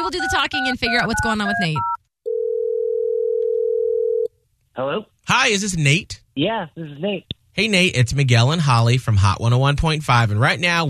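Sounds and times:
speech: 0:00.1 - 0:02.0, 0:04.8 - 0:10.8
telephone dial tone: 0:01.8 - 0:04.3.

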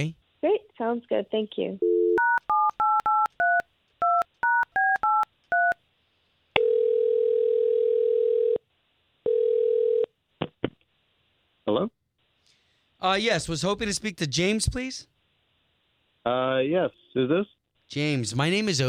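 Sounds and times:
speech: 0:00.0 - 0:00.2, 0:00.8 - 0:01.9, 0:13.0 - 0:15.1, 0:16.2 - 0:18.8
telephone ringing tones: 0:01.8 - 0:05.8, 0:06.6 - 0:08.6, 0:09.2 - 0:10.1
touch-tone telephone keypad beeps dialing a call: 0:01.8 - 0:05.8.

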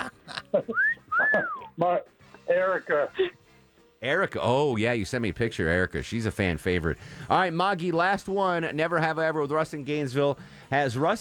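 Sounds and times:
two-note wolf whistle: 0:00.7 - 0:01.7
speech: 0:01.8 - 0:03.4, 0:04.0 - 0:11.1.

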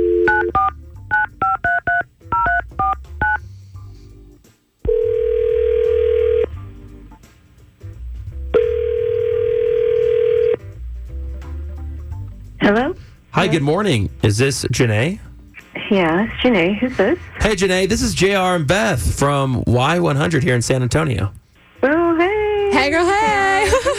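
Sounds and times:
outgoing call ringback tone: 0:00.0 - 0:03.4, 0:04.9 - 0:06.6, 0:08.6 - 0:10.6
touch-tone dialing beeps: 0:00.0 - 0:03.4
speech: 0:13.4 - 0:15.3, 0:15.9 - 0:22.0, 0:22.8 - 0:23.9
laughter: 0:22.8 - 0:23.9.

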